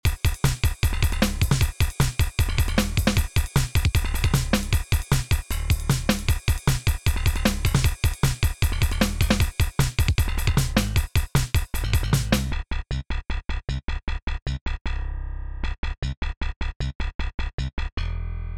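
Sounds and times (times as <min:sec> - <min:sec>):
drum: 0:00.0 - 0:12.6
bass: 0:00.4 - 0:18.5.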